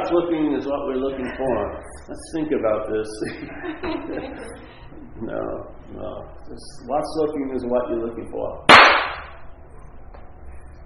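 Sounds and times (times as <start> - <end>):
speech: 0.1 - 9.1
laughter: 3.2 - 5.1
sharp slap: 8.7 - 9.4.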